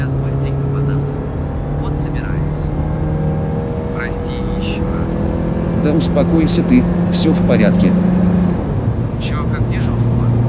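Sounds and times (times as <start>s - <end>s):
cars idling in a traffic jam: 0.0s - 10.4s
speech: 5.9s - 8.1s.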